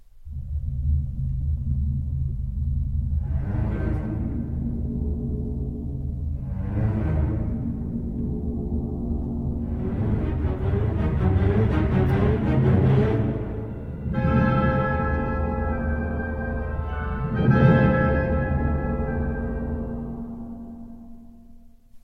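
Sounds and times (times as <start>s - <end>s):
deep sustained orchestral strings: 0.2s - 21.8s
held wind-instrument chords: 9.8s - 21.0s.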